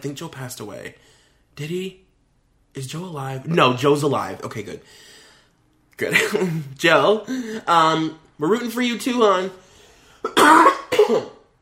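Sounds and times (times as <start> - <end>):
speech: 0.0 - 2.0, 2.8 - 5.2, 6.0 - 9.6, 10.2 - 11.4
harsh coughs: 10.2 - 11.5.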